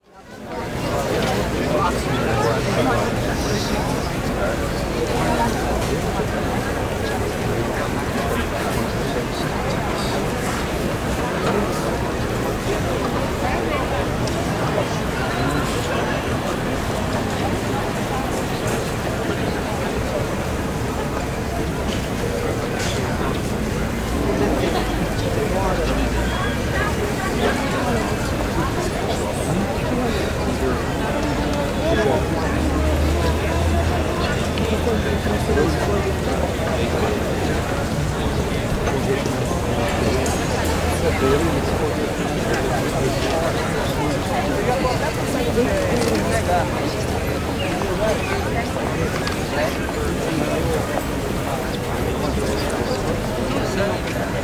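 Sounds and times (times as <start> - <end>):
outdoor street market crowd walla: 0.0 - 54.4.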